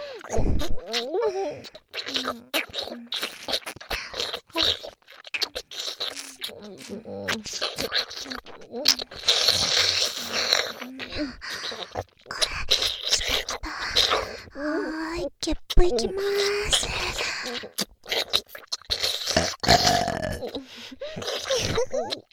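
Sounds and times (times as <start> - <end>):
breathy vocal noises: 0.0 - 22.3
person burping: 19.3 - 22.1.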